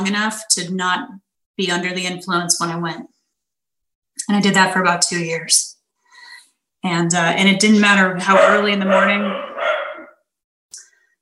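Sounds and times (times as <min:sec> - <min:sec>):
speech: 0:00.0 - 0:03.2, 0:04.2 - 0:05.8, 0:06.8 - 0:09.5
rescue dog barking downstairs: 0:08.2 - 0:10.2.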